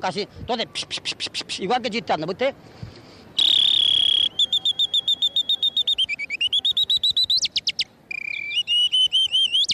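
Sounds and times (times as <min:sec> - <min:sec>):
speech: 0:00.0 - 0:03.0
loud whistle mimicking birdsong: 0:03.4 - 0:09.7.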